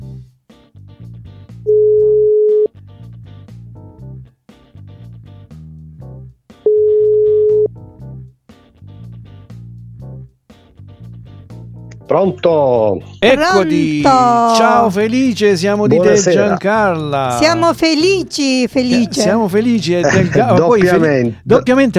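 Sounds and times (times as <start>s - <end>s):
music: 0.0s - 21.9s
outgoing telephone call ringing tone: 1.7s - 2.7s, 6.7s - 7.7s
speech: 12.1s - 21.9s
laughter: 13.6s - 18.2s, 18.8s - 21.2s.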